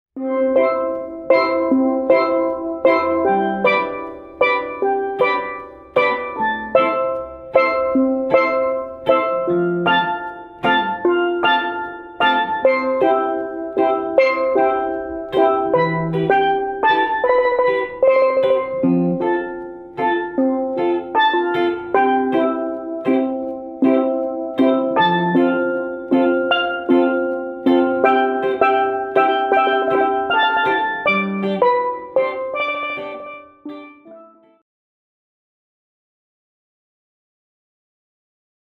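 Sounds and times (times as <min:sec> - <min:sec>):
steel drum: 0:00.2 - 0:34.4
guitar: 0:00.2 - 0:34.6.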